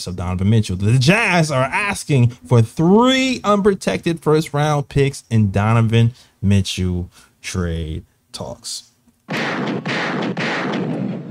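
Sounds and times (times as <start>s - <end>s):
speech: 0.0s - 11.2s
booming gunshots: 9.3s - 11.2s.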